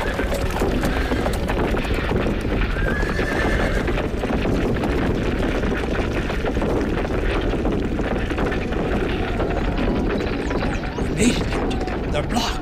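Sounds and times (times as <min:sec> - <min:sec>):
horse neighing and whinnying: 0:00.0 - 0:01.5, 0:02.8 - 0:04.0
dense noisy bustle: 0:00.0 - 0:12.6
horse hooves clopping as a horse pulls hard on ropes: 0:00.0 - 0:12.6.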